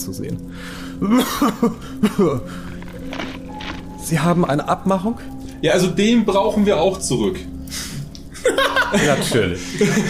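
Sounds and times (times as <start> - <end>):
speech: 0.0 - 2.7, 4.1 - 7.5, 8.4 - 10.0
person coughing in rough voiced bursts: 1.0 - 2.3
laughter: 8.4 - 10.0.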